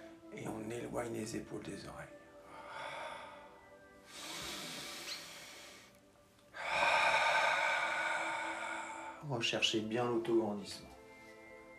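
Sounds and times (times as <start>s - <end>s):
speech: 0.3s - 2.2s, 9.3s - 11.0s
forceful breathy exhalations during breathing exercise: 2.4s - 9.3s.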